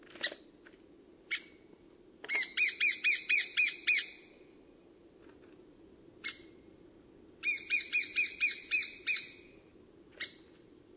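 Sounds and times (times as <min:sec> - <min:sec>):
lesser spotted woodpecker calling: 0:02.3 - 0:04.2, 0:07.4 - 0:09.4.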